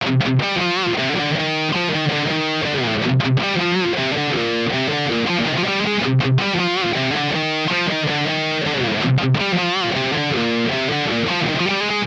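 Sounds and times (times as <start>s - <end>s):
electric guitar through Engl Powerball amplifier: 0.0s - 12.0s.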